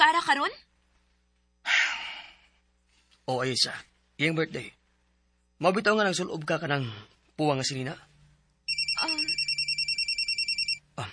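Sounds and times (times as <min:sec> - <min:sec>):
speech: 0:00.2 - 0:00.7, 0:03.3 - 0:04.8, 0:05.6 - 0:08.1
phone ringtone with electronic trill: 0:08.7 - 0:10.8.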